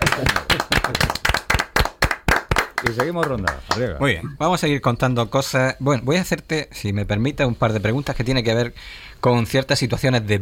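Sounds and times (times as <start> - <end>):
audience applause at a live question-and-answer show: 0.0 - 3.8
speech: 2.9 - 10.4.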